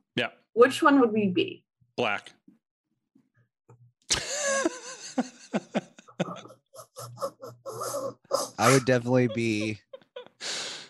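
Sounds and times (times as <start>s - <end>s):
speech: 0.2s - 2.4s, 4.6s - 9.8s
laughter: 4.1s - 10.3s
person coughing: 8.6s - 9.8s.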